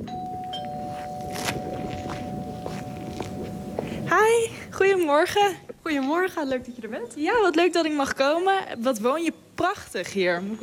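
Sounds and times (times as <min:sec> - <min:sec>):
doorbell ringing at an old monumental forester's house in the woods: 0:00.0 - 0:04.6
footsteps: 0:00.3 - 0:05.1
speech: 0:04.1 - 0:10.6.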